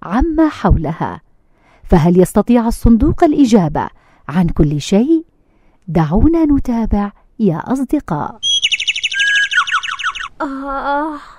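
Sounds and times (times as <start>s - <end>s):
speech: 0.0s - 1.2s, 1.9s - 5.2s, 5.9s - 8.5s, 10.4s - 11.3s
sparrows chirping: 8.4s - 10.4s.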